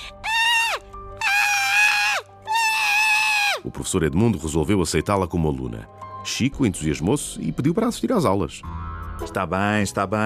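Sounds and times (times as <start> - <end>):
person squealing in imitation of a misbehaving young tiger: 0.0 - 3.6
speech: 3.7 - 10.2.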